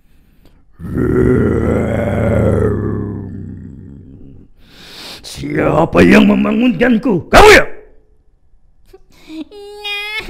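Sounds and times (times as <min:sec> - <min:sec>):
speech: 0:00.8 - 0:01.7, 0:05.8 - 0:07.7
voice imitating a lion's growl: 0:00.8 - 0:04.5.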